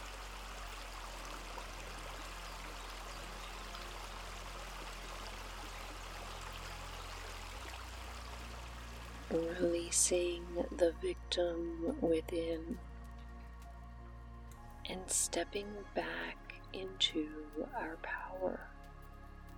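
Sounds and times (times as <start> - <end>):
stream water flowing: 0.0 - 10.8
speech: 9.3 - 12.9, 14.9 - 18.7.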